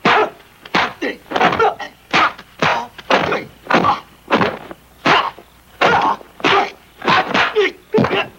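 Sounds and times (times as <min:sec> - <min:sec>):
martial arts fighting: 0:00.0 - 0:08.3.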